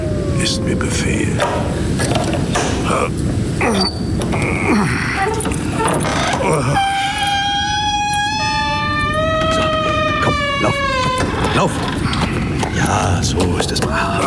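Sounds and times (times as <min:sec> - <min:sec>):
speech: 0:00.4 - 0:07.1, 0:11.6 - 0:12.2, 0:12.8 - 0:14.2
clattering and rumbling movement: 0:01.3 - 0:14.2
gate creaking open: 0:03.6 - 0:14.1.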